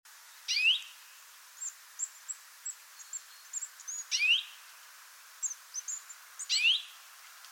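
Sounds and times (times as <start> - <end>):
European greenfinch upward-sweeping whistled calls: 0.5 - 1.0, 1.6 - 4.6, 5.4 - 7.0.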